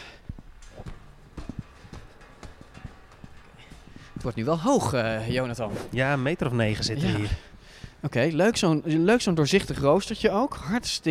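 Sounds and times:
footsteps climbing a stairway to an upper floor: 0.0 - 10.6
speech: 4.2 - 11.0.

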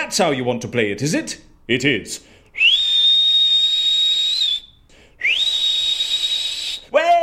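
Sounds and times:
speech: 0.1 - 2.7
person whistling long steady high notes: 2.6 - 6.9.

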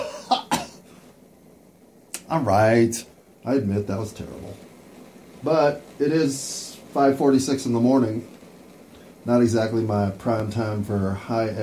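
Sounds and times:
person coughing: 0.0 - 0.8
speech: 2.3 - 4.7, 5.4 - 8.4, 9.2 - 11.6.

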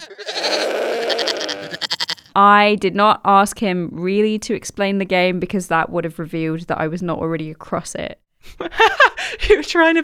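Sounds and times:
goat bleating: 0.0 - 2.4
speech: 2.4 - 10.0.

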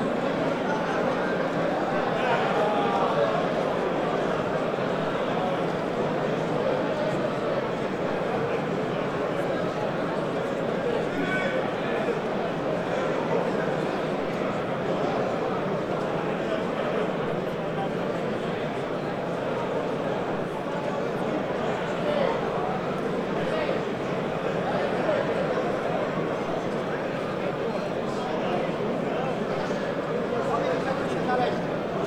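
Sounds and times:
crowd chatter in a grand hall: 0.0 - 32.0.

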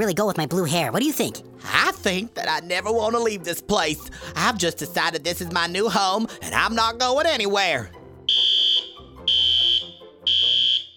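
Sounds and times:
speech: 0.0 - 8.0
loud piercing high-pitched alarm beeps: 8.3 - 10.9.

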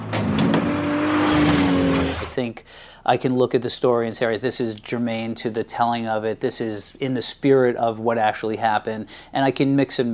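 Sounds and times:
sports car engine revving: 0.0 - 2.4
speech: 2.4 - 10.1.

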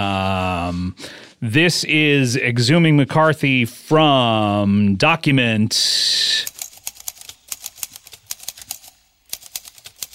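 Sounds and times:
speech: 0.9 - 6.5
mechanical typewriter keystrokes in a song intro: 6.5 - 10.1.

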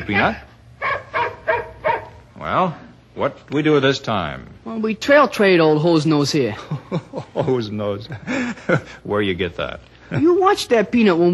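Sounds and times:
speech: 0.0 - 0.5, 2.4 - 11.3
dog barking and whimpering: 0.0 - 2.2
low steady hum: 0.0 - 11.3
laughter: 6.5 - 9.1.

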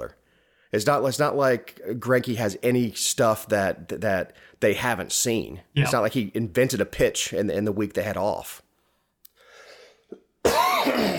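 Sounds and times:
speech: 0.0 - 8.6
breathy inhale: 0.2 - 0.7, 9.4 - 10.1
loud rough cough: 10.1 - 11.1.

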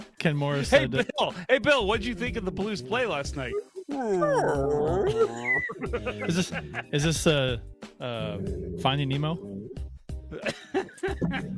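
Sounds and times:
speech: 0.2 - 11.5
laughter: 0.6 - 1.6, 4.2 - 7.2, 10.3 - 11.5
voice imitating a whale call with warbling pitch-sliding moans: 3.5 - 5.8.

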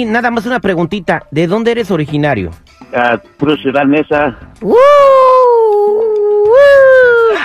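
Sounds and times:
speech: 0.0 - 5.2
coyote howling: 4.6 - 7.4.

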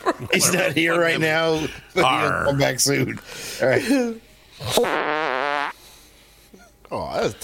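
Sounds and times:
speech: 0.2 - 5.1, 6.9 - 7.4
small fart in buzzy bursts: 4.6 - 5.8.

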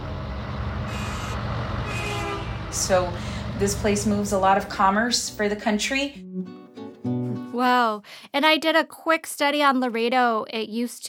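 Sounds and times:
diesel truck traffic rumbling through Laredo inland port: 0.0 - 5.9
speech: 2.8 - 6.6, 7.6 - 11.0.

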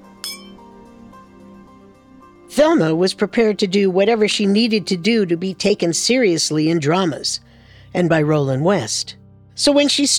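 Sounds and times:
glasses clinking in a toast: 0.2 - 0.6
speech: 2.5 - 10.1.

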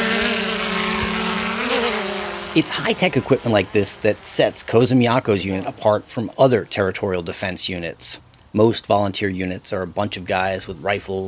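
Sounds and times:
surveillance drones hovering and buzzing overhead: 0.0 - 6.8
speech: 2.6 - 11.2.

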